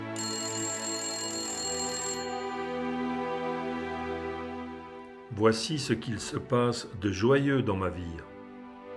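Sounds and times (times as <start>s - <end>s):
electronic phone ringtone: 0.2s - 3.5s
speech: 5.4s - 8.3s.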